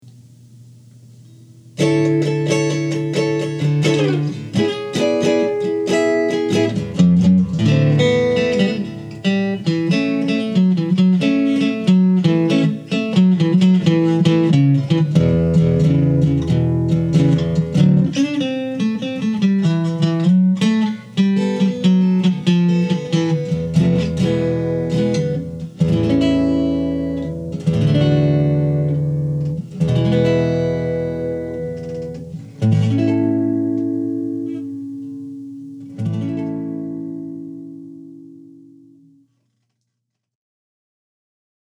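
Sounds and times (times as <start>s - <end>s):
archtop electric guitar: 1.8s - 39.2s.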